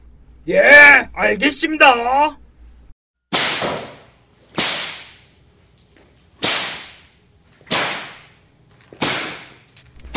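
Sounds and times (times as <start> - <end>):
speech: 0.4 - 2.4
whip cracks: 3.3 - 5.3, 6.4 - 8.4, 9.0 - 10.1.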